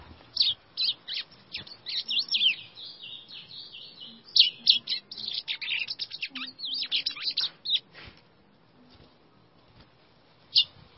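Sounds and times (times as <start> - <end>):
White-throated seedeater song: 0.3 - 7.9, 10.5 - 10.8.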